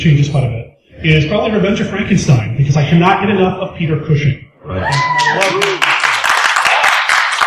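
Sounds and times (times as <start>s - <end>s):
speech: 0.0s - 5.7s
people cheering or calling out: 4.6s - 7.4s
audience applause: 4.8s - 7.4s.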